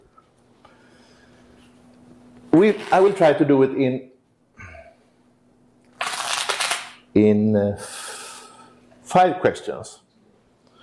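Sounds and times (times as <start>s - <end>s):
speech: 2.5s - 4.1s, 7.2s - 8.0s, 9.1s - 10.0s
deck of playing cards shuffled: 2.6s - 3.2s, 6.0s - 7.0s.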